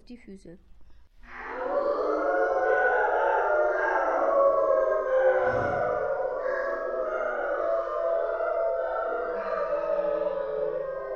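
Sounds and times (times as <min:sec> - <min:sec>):
speech: 0:00.1 - 0:01.4
wolves howling: 0:01.2 - 0:11.1.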